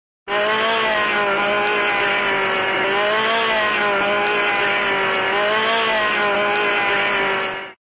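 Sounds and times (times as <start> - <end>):
cartoon grinder grinding buzz: 0.3 - 7.8.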